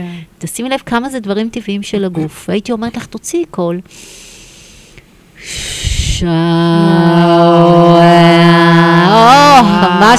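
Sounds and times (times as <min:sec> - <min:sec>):
speech: 0:00.0 - 0:04.2, 0:05.4 - 0:08.5, 0:09.6 - 0:10.1
long loud voiced exhale: 0:03.9 - 0:06.2
sharp breathy inhale: 0:03.9 - 0:06.2.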